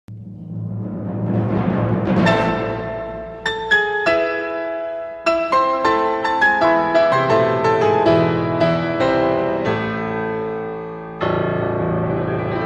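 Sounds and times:
Baroque music: 0:00.1 - 0:12.6.

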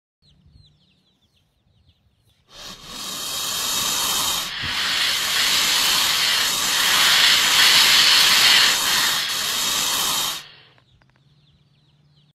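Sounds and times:
anaconda hissing: 0:02.5 - 0:10.8.

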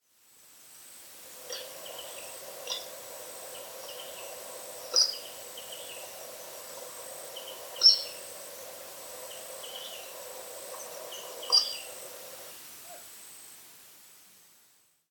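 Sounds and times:
blue coua: 0:01.4 - 0:13.1.

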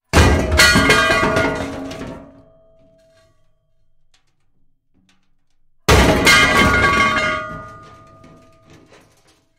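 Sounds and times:
metal debris: 0:00.0 - 0:09.5.

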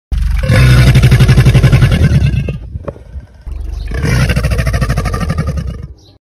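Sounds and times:
black caiman bellowing: 0:00.1 - 0:02.7, 0:03.5 - 0:06.0.

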